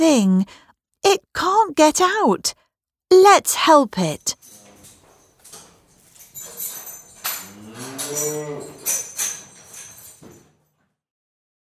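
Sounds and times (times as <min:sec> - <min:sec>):
speech: 0:00.0 - 0:04.5, 0:08.1 - 0:09.0
rustling movement: 0:04.3 - 0:10.5
cow mooing: 0:07.2 - 0:09.1.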